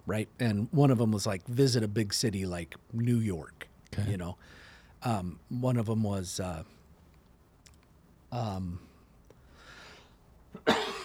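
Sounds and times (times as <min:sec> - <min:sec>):
speech: 0:00.1 - 0:06.8, 0:08.3 - 0:08.9
soft breathing: 0:04.4 - 0:05.1, 0:08.6 - 0:10.3
faint click: 0:07.0 - 0:08.0
person coughing into a microphone: 0:10.6 - 0:11.0.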